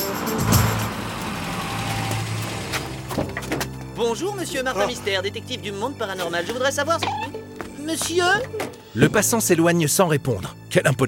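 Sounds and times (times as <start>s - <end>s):
car engine humming as the car rolls along and pulls up: 0.0s - 7.6s
speech: 4.0s - 7.3s, 7.9s - 11.0s.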